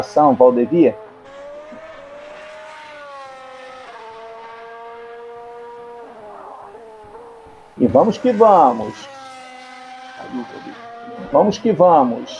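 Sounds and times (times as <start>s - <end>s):
speech: 0.0s - 1.4s, 7.8s - 9.2s, 10.2s - 12.3s
Formula One race cars screaming past: 0.0s - 12.3s.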